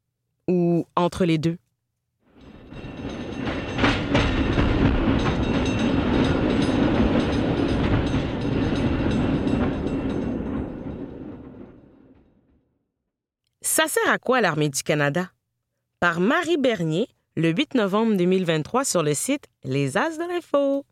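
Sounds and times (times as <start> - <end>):
speech: 0.5 - 1.6, 13.8 - 15.4, 16.0 - 20.9
tram rolling along rails with metallic clatter and squeal: 2.4 - 12.5.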